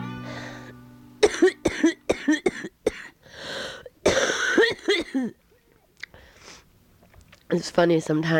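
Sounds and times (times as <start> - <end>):
gasping: 0.2 - 0.8, 3.2 - 4.0, 6.0 - 6.7
hard coughing fit with harsh loud coughs: 1.2 - 3.2, 4.0 - 5.4
speech: 7.6 - 8.3.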